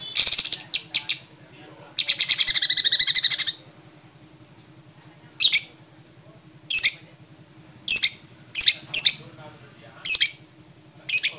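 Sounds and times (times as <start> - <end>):
champion lovebird shrill trilling and squeaky bursts: 0.0 - 1.3, 2.0 - 3.6, 5.4 - 5.8, 6.7 - 7.1, 7.9 - 9.2, 10.1 - 10.5, 11.1 - 11.3.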